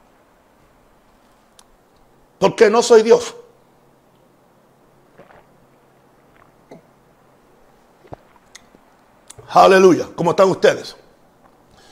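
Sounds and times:
low steady hum: 0:00.0 - 0:11.9
speech: 0:02.4 - 0:03.4, 0:09.5 - 0:11.0
person sipping and swallowing a mouthful of water: 0:05.0 - 0:07.2, 0:07.9 - 0:09.5.

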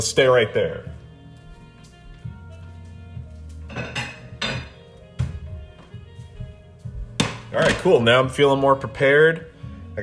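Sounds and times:
speech: 0:00.0 - 0:01.0, 0:07.6 - 0:10.0
plate and utensils clattering as French toast is dished up: 0:03.6 - 0:04.8.

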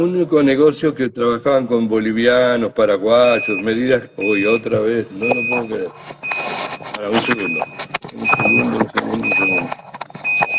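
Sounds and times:
speech: 0:00.0 - 0:06.3, 0:07.0 - 0:10.0
alarm beeping in high-pitched tones: 0:03.1 - 0:10.5.

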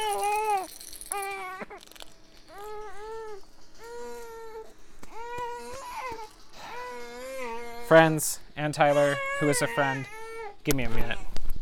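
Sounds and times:
infant babbling and crying: 0:00.0 - 0:01.9, 0:02.5 - 0:11.3
baby's toy elephant rattle shaking: 0:00.0 - 0:04.2
speech: 0:07.9 - 0:11.3.

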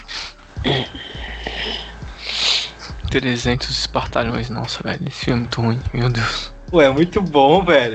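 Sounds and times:
person sneezing from an allergy: 0:00.2 - 0:02.7
speech: 0:03.1 - 0:07.9.

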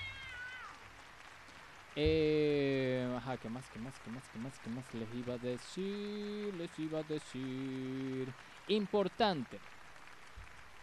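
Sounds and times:
cat meowing: 0:00.0 - 0:00.8
speech: 0:02.0 - 0:09.8.

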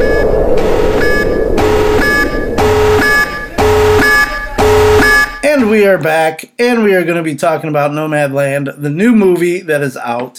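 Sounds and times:
rough noisy wash: 0:00.0 - 0:04.7
loud electronic beeps marking a break: 0:00.0 - 0:05.7
speech: 0:05.8 - 0:10.3.

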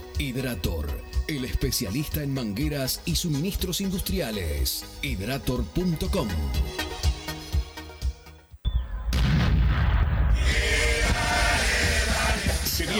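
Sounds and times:
speech: 0:00.2 - 0:07.0
fireworks exploding: 0:09.0 - 0:12.9.

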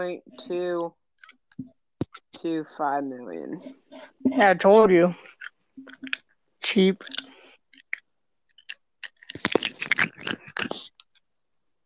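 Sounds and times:
speech: 0:00.0 - 0:01.0, 0:02.4 - 0:07.3
crunchy chewing on a plastic bottle cap: 0:05.2 - 0:06.3, 0:07.0 - 0:11.2.

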